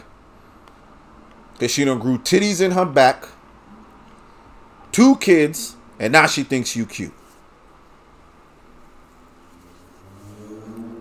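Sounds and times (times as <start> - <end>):
speech: 1.6 - 3.4, 5.0 - 7.2
truck engine rumbling deeply as it drives past outside: 9.9 - 11.0.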